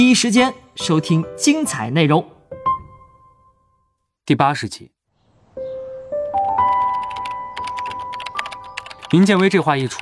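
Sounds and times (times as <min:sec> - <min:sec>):
speech: 0:00.0 - 0:02.4, 0:04.3 - 0:05.0, 0:09.1 - 0:10.0
computer keyboard typing in a dormitory room: 0:06.4 - 0:10.0.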